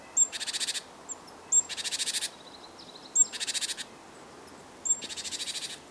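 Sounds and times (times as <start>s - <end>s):
great tit Parus major scolding call with buzzy churr: 0.2s - 2.3s, 3.1s - 3.9s, 4.9s - 5.8s.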